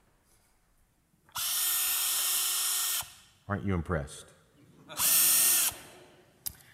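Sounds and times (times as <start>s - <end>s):
cordless drill whirring: 1.3s - 3.2s, 5.0s - 5.9s
speech: 3.5s - 4.4s.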